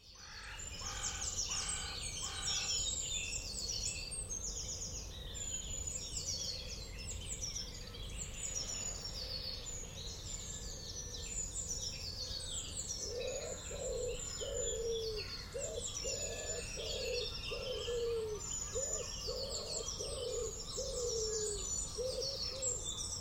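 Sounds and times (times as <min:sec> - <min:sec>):
birds chirping and trilling in a suburban Bristol woodland: 0:00.0 - 0:23.1
low hooting or cooing bird calls: 0:13.0 - 0:22.9.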